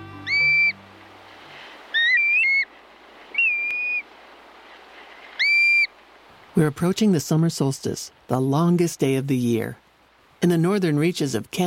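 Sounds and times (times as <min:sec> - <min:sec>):
soft hiss: 0:00.0 - 0:11.6
black-bellied plover whistled calls: 0:00.2 - 0:00.8, 0:01.9 - 0:02.7, 0:03.3 - 0:04.1, 0:05.4 - 0:05.9
speech: 0:06.6 - 0:09.8, 0:10.4 - 0:11.6.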